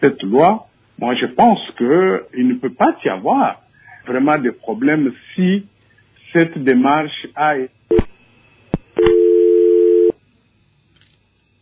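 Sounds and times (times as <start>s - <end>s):
speech: 0.0s - 5.7s, 6.3s - 8.1s
telephone tone while dialing back a lost call: 9.0s - 10.2s.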